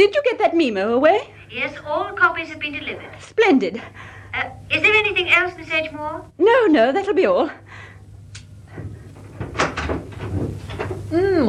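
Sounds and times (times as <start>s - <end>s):
speech: 0.0s - 7.9s, 11.1s - 11.4s
low steady hum: 0.0s - 11.4s
soft bumps and rattles: 8.7s - 11.1s
door opening with latch click as someone enters: 9.4s - 10.9s.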